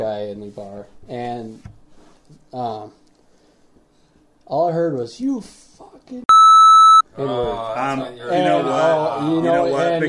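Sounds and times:
speech: 0.0 - 3.0, 4.5 - 6.2, 7.2 - 10.0
censor beep over profanity: 6.3 - 7.0.

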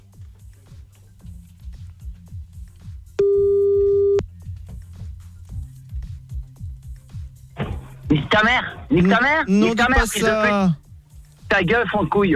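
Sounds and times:
thumping rhythmic music bed: 0.0 - 12.3
telephone busy tone after a dropped call: 3.2 - 4.2
speech: 8.4 - 10.8, 11.5 - 12.3.

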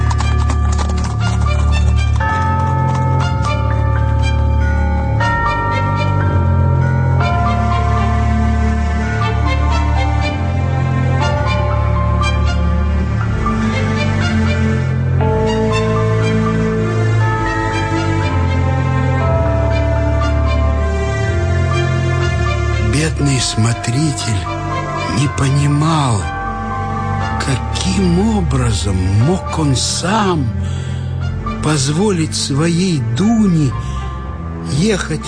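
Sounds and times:
horses galloping pulling a carriage: 0.0 - 3.1
dense music: 0.0 - 35.2
speech: 28.5 - 30.9, 31.6 - 33.8, 34.8 - 35.2.

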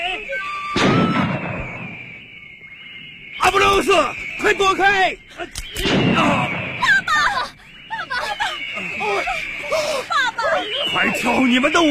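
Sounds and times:
steady tone: 0.0 - 11.8
gunshot: 0.8 - 2.2, 5.6 - 6.9
speech: 3.8 - 6.6, 9.1 - 11.8
laughter: 6.8 - 11.8.

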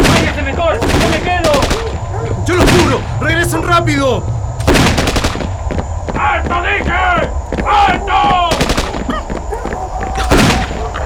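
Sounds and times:
gunfire in a radio drama battle scene: 0.0 - 3.6, 4.6 - 5.9, 8.5 - 9.2, 10.2 - 10.9
shouting voices in a radio drama battle scene: 0.0 - 4.2, 6.1 - 11.0
speech: 3.2 - 4.4.

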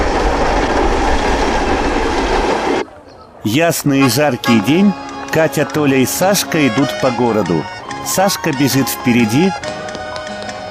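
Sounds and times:
train speeding along at night: 0.0 - 2.8, 3.7 - 7.0
speech: 3.4 - 9.8.

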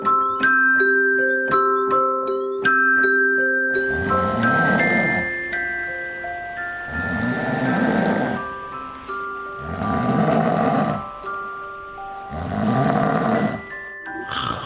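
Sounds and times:
short tinkling melody of chimes: 0.0 - 14.6
man snoring in deep rasping breaths: 3.8 - 5.6, 6.6 - 8.7, 9.5 - 11.2, 12.3 - 14.6.

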